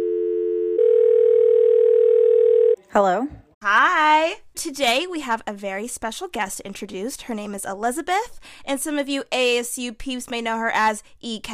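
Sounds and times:
telephone line ringing tone while a call connects: 0.0s - 2.8s
speech: 2.9s - 11.5s.

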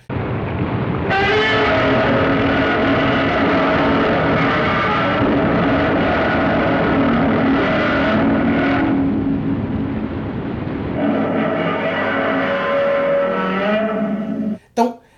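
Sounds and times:
monster roar from gloved hands on double bass strings: 0.9s - 14.6s.

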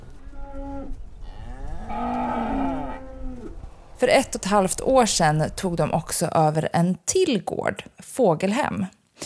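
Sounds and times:
dairy cows mooing: 0.2s - 3.6s
speech: 4.0s - 9.2s.

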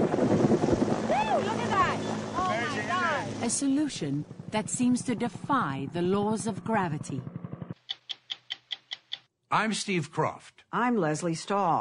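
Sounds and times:
gusty wind noise: 0.0s - 3.6s
helicopter engine and rotor droning: 0.0s - 7.8s
speech: 3.5s - 7.4s, 9.5s - 11.7s.

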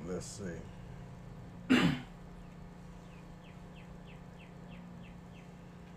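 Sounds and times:
speech: 0.1s - 0.8s
person coughing or clearing throat: 1.7s - 2.1s
bird chirping in short high notes: 2.3s - 5.8s.

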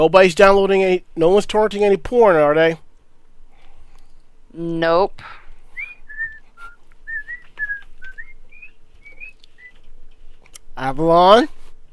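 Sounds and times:
speech: 0.0s - 2.8s, 4.5s - 5.4s, 10.8s - 11.6s
faint steady hum: 0.0s - 11.9s
person whistling a short wandering tune: 5.8s - 9.7s.

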